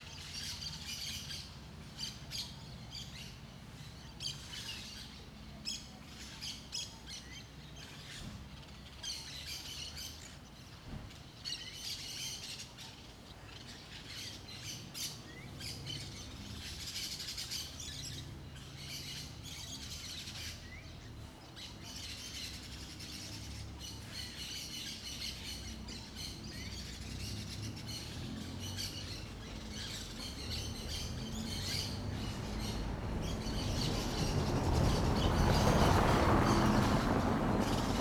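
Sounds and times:
birds in a small-town backyard by day: 0.0 - 37.9
cars passing: 15.4 - 37.9.

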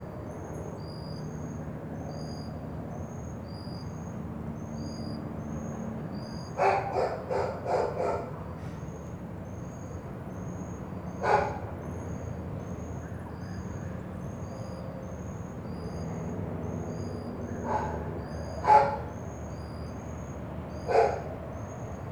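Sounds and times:
airplane over a residential area at night: 0.0 - 22.0
dog in a residential area at night: 6.6 - 8.4, 11.2 - 11.6, 17.7 - 19.2, 20.8 - 21.3.

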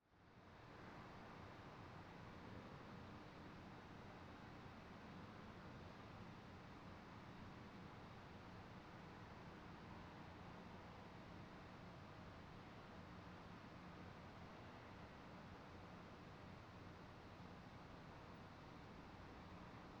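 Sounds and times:
outdoor night ambience outside a residential house: 0.0 - 19.9.

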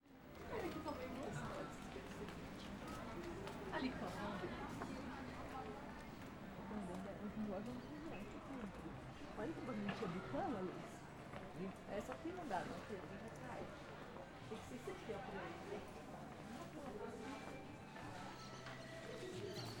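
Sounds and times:
murmur of voices at a fair: 0.2 - 19.7
music at a fair: 17.1 - 19.7.

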